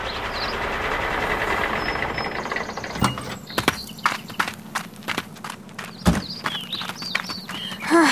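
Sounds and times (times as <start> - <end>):
wagons rolling into a farmyard: 0.0 - 8.0
hooves clip-clopping in a farmyard: 3.1 - 8.0
knocks: 6.0 - 6.6.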